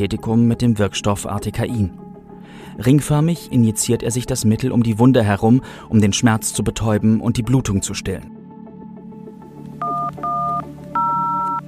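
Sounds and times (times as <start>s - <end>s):
speech: 0.0s - 8.4s
telephone keypad tones dialing police emergency number: 9.8s - 11.6s.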